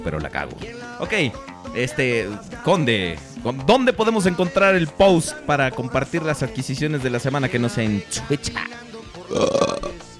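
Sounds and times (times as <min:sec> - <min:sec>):
speech: 0:00.0 - 0:08.7, 0:09.3 - 0:09.7
short vocal noises: 0:08.6 - 0:10.1
loud drawn-out gravelly burp: 0:09.2 - 0:10.1.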